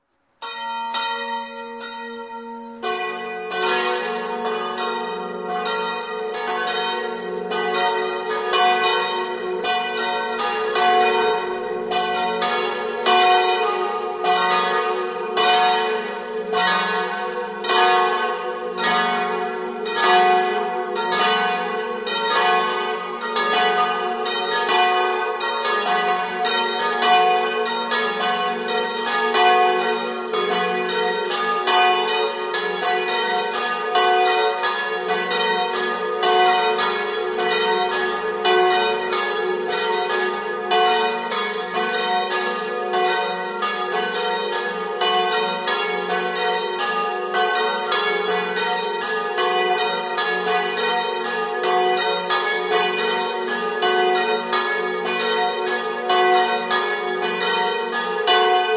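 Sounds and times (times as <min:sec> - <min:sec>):
bells ringing: 0:00.4 - 0:58.7.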